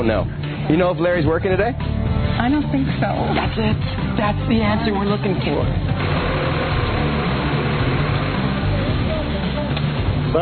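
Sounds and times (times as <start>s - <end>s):
speech: 0.0s - 6.1s
small tractor engine running at a work site: 5.9s - 10.3s.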